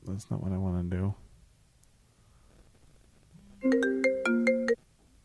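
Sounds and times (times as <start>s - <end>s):
speech: 0.1s - 1.3s
breathy bursts of noise: 2.0s - 2.8s
cell phone ringtone melodic phrase: 3.6s - 4.8s.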